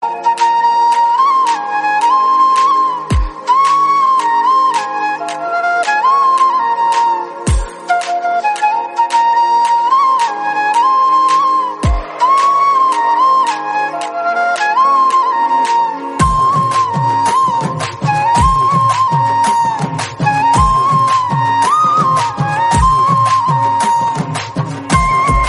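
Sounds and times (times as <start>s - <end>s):
instrumental flute background music: 0.0s - 25.4s.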